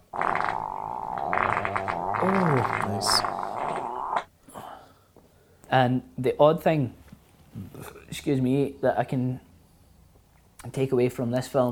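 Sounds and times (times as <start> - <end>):
squeaky fart sound: 0.0 - 4.3
speech: 2.2 - 3.3, 5.7 - 7.0, 7.6 - 9.4, 10.7 - 11.6.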